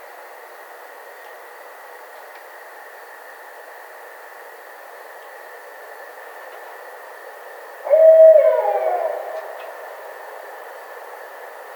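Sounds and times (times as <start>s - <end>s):
barred owl giving a drawn-out hoot: 7.9s - 10.4s.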